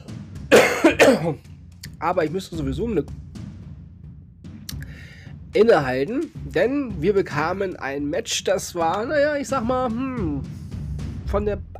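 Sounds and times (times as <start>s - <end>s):
harsh coughs: 0.5s - 1.4s
speech: 1.1s - 3.2s, 5.5s - 10.6s, 11.3s - 11.7s.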